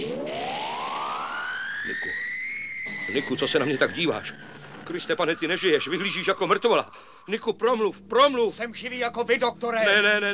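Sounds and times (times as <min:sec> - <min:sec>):
siren-like roar from a main tower: 0:00.0 - 0:07.3
speech: 0:03.1 - 0:10.3.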